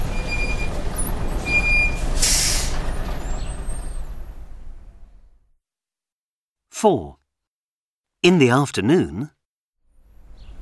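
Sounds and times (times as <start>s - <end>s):
bus engine rumble pulling up at a stop: 0.0s - 5.4s
bus air brakes hissing: 0.3s - 4.1s
speech: 6.8s - 7.2s, 8.2s - 9.4s.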